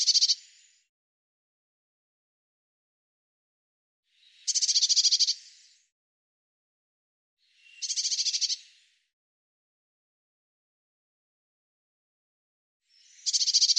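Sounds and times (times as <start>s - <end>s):
Eurasian blue tit churring: 0.0s - 0.4s, 4.4s - 5.4s, 7.8s - 8.6s, 13.2s - 13.7s.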